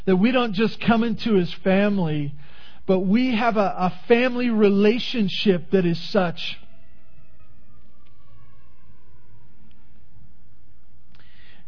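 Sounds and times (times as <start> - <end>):
speech: 0.0 - 6.6
ambulance siren wailing in a slow falling sweep: 6.6 - 10.4.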